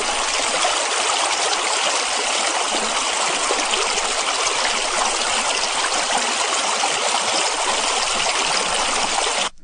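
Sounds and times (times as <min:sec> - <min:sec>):
flowing stream water: 0:00.0 - 0:09.6.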